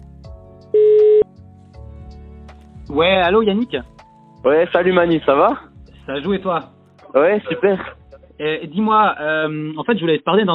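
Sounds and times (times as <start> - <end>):
single mid-pitched telephone tone as a call is placed: 0.8 - 1.3
speech: 2.9 - 10.5.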